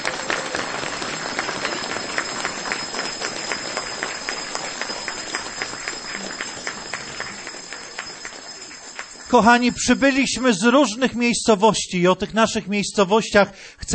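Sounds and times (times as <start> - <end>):
audience applause: 0.0 - 11.0
speech: 9.3 - 13.9.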